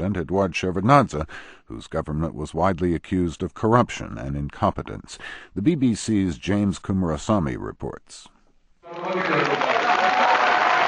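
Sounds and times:
speech: 0.0s - 8.3s
crowd of supporters cheering and applauding a new president: 8.8s - 10.8s.

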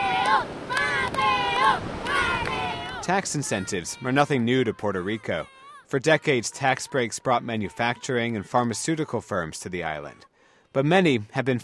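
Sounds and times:
ocean surf at a surfing beach in Puerto Rico: 0.0s - 6.6s
indistinct voices of surfing school students calling out: 0.0s - 9.2s
speech: 3.1s - 11.6s.

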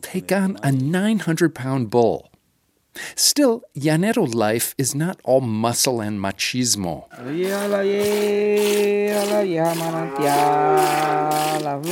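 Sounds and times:
speech: 0.1s - 2.3s, 3.0s - 11.8s
man singing softly in long held notes: 7.2s - 11.8s
milk squirting into a pail from cows milked by hand before dawn: 7.2s - 11.8s.

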